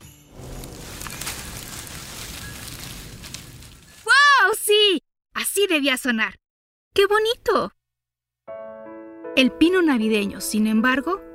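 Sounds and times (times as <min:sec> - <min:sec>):
tree branches rustling: 0:00.3 - 0:04.6
speech: 0:05.6 - 0:06.4, 0:07.0 - 0:07.8, 0:09.4 - 0:11.3.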